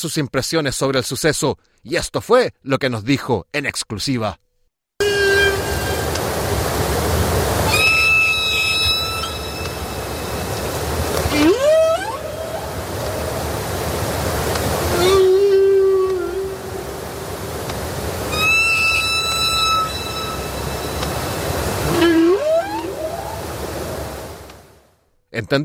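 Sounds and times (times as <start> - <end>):
speech: 0.0 - 4.5, 25.4 - 25.6
whale song underwater: 5.0 - 6.3, 7.6 - 13.7, 14.8 - 24.5
constant rushing underwater ocean hiss: 5.0 - 24.8.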